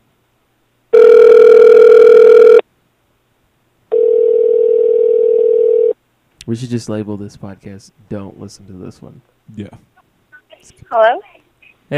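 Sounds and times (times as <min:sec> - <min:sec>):
telephone buzzing tone while placing a call: 0:00.9 - 0:02.6, 0:03.9 - 0:06.0
speech: 0:06.5 - 0:09.9, 0:10.6 - 0:11.3.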